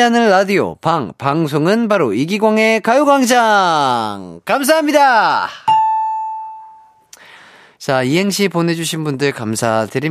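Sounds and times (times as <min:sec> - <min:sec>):
speech: 0:00.0 - 0:05.8, 0:07.8 - 0:10.0
ding-dong-dang correct answer chime: 0:05.7 - 0:07.1.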